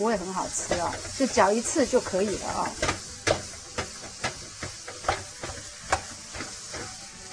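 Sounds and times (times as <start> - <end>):
speech: 0.0 - 3.0
ground pork sizzling in a hot pan on a gas stove: 0.0 - 7.3.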